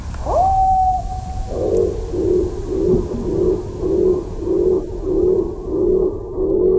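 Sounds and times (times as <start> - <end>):
blue tit song slowed down: 0.0 - 6.6.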